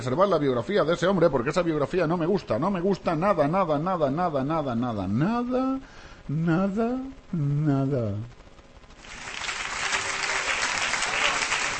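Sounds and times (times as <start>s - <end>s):
speech: 0.0s - 8.4s
audience applauding: 9.0s - 11.7s.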